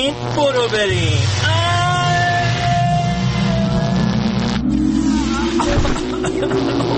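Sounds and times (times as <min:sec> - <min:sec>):
speech: 0:00.0 - 0:01.6, 0:05.8 - 0:06.9
time machine starting up sound effect: 0:00.9 - 0:06.9
laughter: 0:05.2 - 0:06.9.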